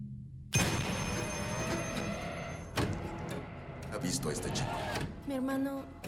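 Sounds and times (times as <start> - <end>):
old black wall telephone bell ringing: 0.6 - 2.8
speech: 4.0 - 6.0.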